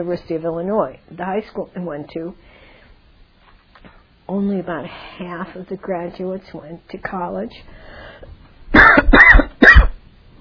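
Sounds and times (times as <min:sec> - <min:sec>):
speech: 0:00.0 - 0:02.6, 0:04.3 - 0:09.2
person coughing: 0:08.8 - 0:10.0.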